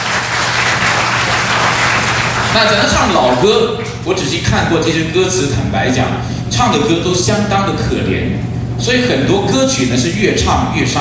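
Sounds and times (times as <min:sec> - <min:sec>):
audience applause at an evening church gathering: 0:00.0 - 0:03.5
speech: 0:02.6 - 0:10.9.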